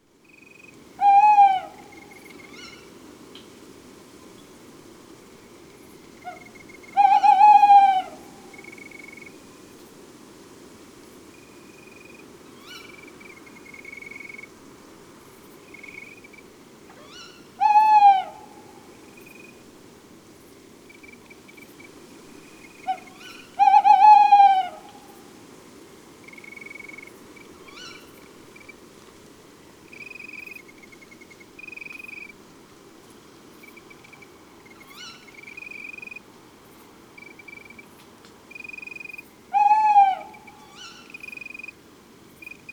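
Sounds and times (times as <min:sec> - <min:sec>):
tawny owls hooting: 0:01.0 - 0:02.8, 0:06.2 - 0:09.2, 0:17.0 - 0:19.5, 0:22.7 - 0:25.2, 0:38.6 - 0:41.6.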